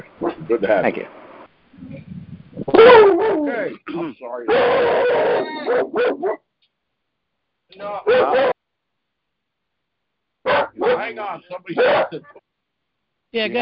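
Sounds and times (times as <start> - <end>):
speech: 0.0 - 1.2, 2.7 - 6.4, 7.7 - 8.5, 10.8 - 12.4, 13.3 - 13.6
dog barking and yelping: 2.7 - 3.7, 4.5 - 6.5, 8.1 - 8.6, 10.5 - 11.2, 11.8 - 12.4.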